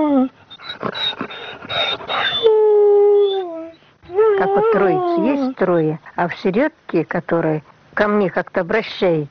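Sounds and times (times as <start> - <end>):
small dog whimpering in high-pitched whines: 0.1 - 2.6, 3.2 - 5.5
speech: 5.6 - 9.2.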